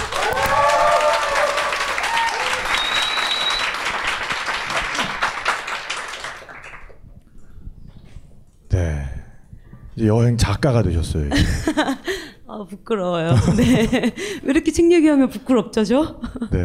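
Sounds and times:
audience cheering: 0.0s - 6.8s
audience applause: 0.0s - 7.0s
speech: 10.0s - 12.0s, 12.6s - 16.6s
laughter: 11.3s - 12.1s, 13.3s - 14.2s.

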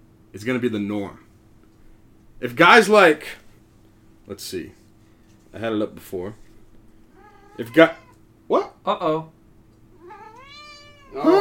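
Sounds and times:
speech: 0.3s - 1.2s, 2.4s - 3.4s, 4.3s - 4.8s, 5.5s - 6.4s, 7.6s - 9.4s, 11.1s - 11.3s
cat meowing: 7.1s - 8.2s, 10.0s - 11.3s.

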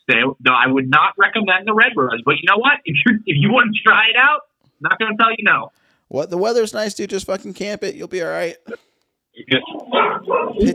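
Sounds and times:
speech: 0.1s - 10.7s
dog barking loud and close: 9.9s - 10.7s.

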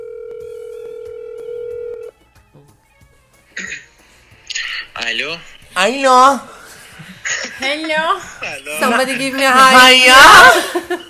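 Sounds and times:
telephone call ringing tone: 0.0s - 2.1s
speech: 5.1s - 6.5s, 7.6s - 11.0s
laughter: 10.2s - 11.0s.

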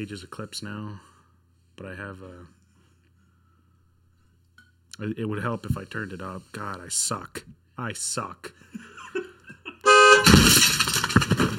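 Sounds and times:
speech: 0.0s - 1.1s, 1.8s - 2.6s, 5.0s - 9.3s
laughter: 8.6s - 9.9s
car horn blaring: 9.8s - 10.4s
car crash impact crunch: 10.1s - 11.5s.

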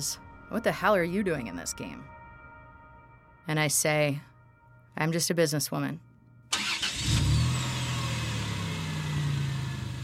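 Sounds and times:
speech: 0.0s - 2.2s, 3.4s - 4.3s, 5.0s - 6.1s
car engine starting and running as the car moves off: 6.5s - 10.0s.

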